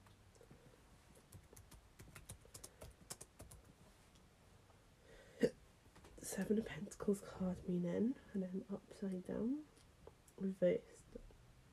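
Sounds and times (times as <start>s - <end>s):
typing on a computer keyboard: 1.2s - 3.7s
speech: 6.4s - 9.7s, 10.4s - 11.2s.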